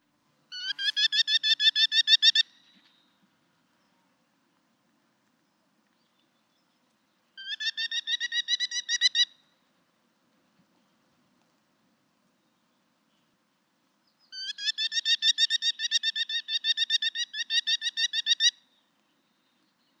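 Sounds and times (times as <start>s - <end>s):
merlin calling: 0.5s - 3.1s, 7.4s - 9.6s, 14.3s - 18.8s.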